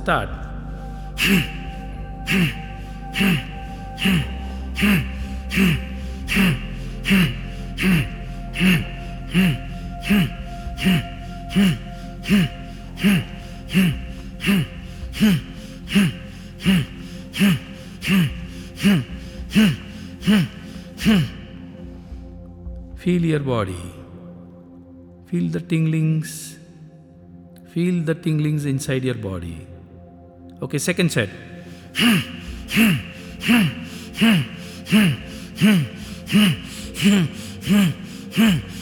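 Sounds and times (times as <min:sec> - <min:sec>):
speech: 0:00.0 - 0:00.5, 0:01.2 - 0:01.6, 0:02.3 - 0:21.4, 0:23.0 - 0:24.0, 0:25.3 - 0:26.6, 0:27.7 - 0:29.7, 0:30.6 - 0:38.8
forceful rhythmic breathing exercise: 0:00.0 - 0:22.9, 0:31.3 - 0:38.8.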